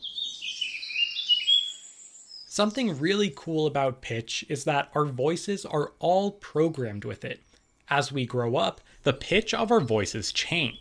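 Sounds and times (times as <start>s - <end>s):
bird singing a high-pitched warbling song: 0.0s - 3.8s, 7.2s - 8.7s, 9.3s - 10.8s
speech: 2.6s - 10.8s.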